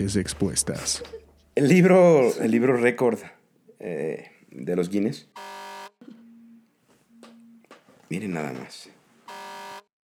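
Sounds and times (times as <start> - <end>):
speech: 0.0 - 6.1, 8.1 - 9.0
alarm buzzing: 5.3 - 8.6, 9.2 - 9.9.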